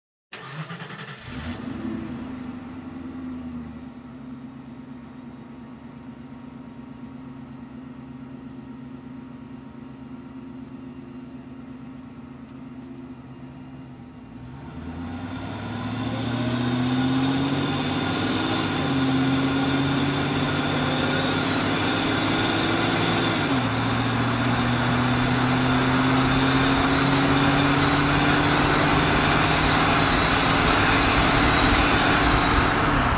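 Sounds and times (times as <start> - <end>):
car engine ignition: 0.3 - 5.0, 11.8 - 33.1
car driving fast: 14.4 - 33.1.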